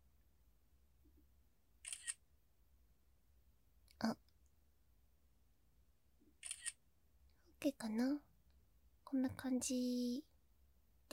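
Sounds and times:
camera shutter click taking a photo: 1.9s - 2.2s, 6.4s - 6.8s
speech: 4.0s - 4.2s, 7.6s - 8.3s, 9.1s - 10.3s.

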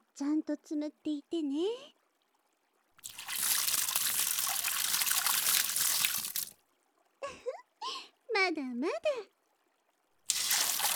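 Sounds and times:
speech: 0.2s - 2.0s, 8.4s - 9.4s
water poured over hair to rinse it: 3.0s - 6.5s, 10.3s - 10.9s.

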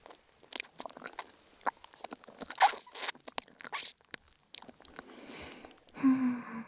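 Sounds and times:
wet chewing and slurping of smooth noodles: 0.0s - 6.6s
person humming briefly: 6.0s - 6.6s.

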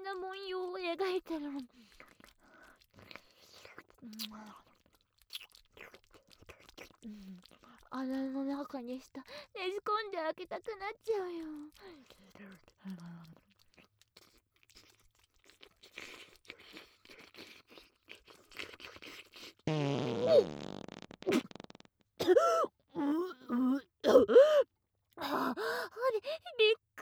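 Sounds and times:
soft wet mouth noises: 0.0s - 24.5s
speech: 0.2s - 2.2s, 4.0s - 4.7s, 7.0s - 13.4s, 19.7s - 21.4s, 22.3s - 27.0s
loud fart: 19.7s - 22.4s.

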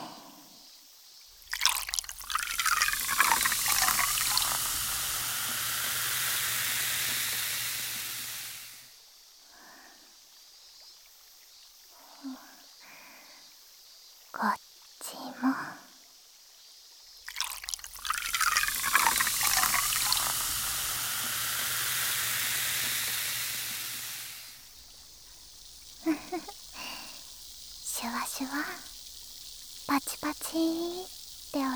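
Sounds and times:
liquid being poured close to the ear: 1.4s - 8.8s, 17.3s - 31.7s
soft fizzing: 1.4s - 8.9s, 17.3s - 31.7s.

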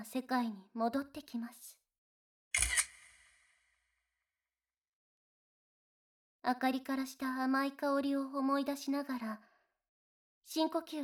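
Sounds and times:
speech: 0.0s - 1.8s, 6.4s - 9.5s, 10.5s - 11.0s
camera shutter click with flash: 2.6s - 3.6s.

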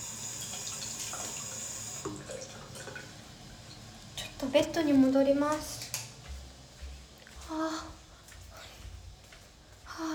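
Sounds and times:
tap water running into a sink while hands are washed: 0.0s - 3.1s
speech: 4.4s - 5.8s.

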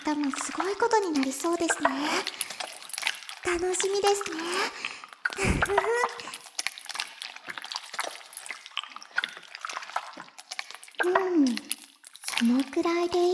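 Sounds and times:
drips: 0.0s - 13.3s
shampoo being lathered into foam: 0.0s - 13.3s
speech: 0.1s - 2.5s, 3.5s - 6.2s, 12.7s - 13.3s.

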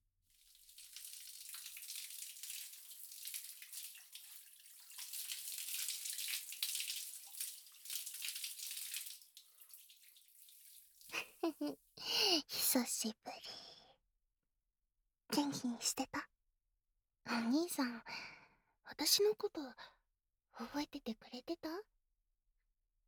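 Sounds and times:
water rinsing hair: 0.3s - 11.7s
speech: 11.6s - 11.8s, 12.4s - 13.6s, 15.6s - 16.1s, 17.5s - 18.2s, 19.0s - 20.0s, 20.6s - 21.9s.

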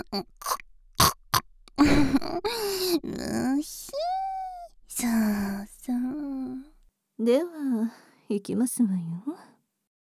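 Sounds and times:
person imitating pig grunts: 0.0s - 6.6s
speech: 0.1s - 0.6s, 7.3s - 9.5s.

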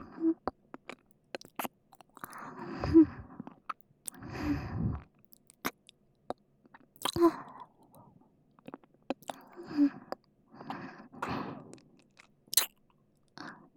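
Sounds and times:
gentle wet mouth clicks of ASMR ear nibbling: 0.4s - 2.4s, 3.5s - 4.2s, 5.0s - 8.0s, 8.6s - 12.8s
small bites of ASMR ear nibbling: 0.8s - 2.4s, 12.0s - 12.8s.

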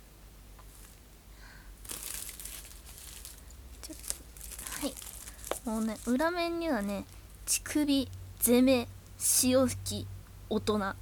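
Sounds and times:
package wrapping crinkling and tearing as a package is opened: 1.8s - 7.6s
speech: 5.7s - 10.9s.

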